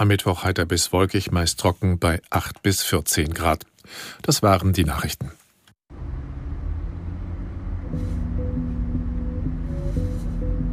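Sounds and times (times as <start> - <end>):
speech: 0.0 - 5.4
nearly full minibus engine rumbling through city streets of Cologne, Germany: 5.9 - 10.7.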